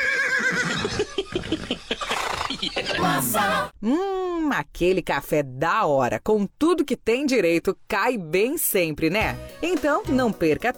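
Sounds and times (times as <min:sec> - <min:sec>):
horse whinnying: 0:00.0 - 0:01.0, 0:02.1 - 0:03.7
laughter: 0:00.8 - 0:03.7
speech: 0:03.0 - 0:10.7.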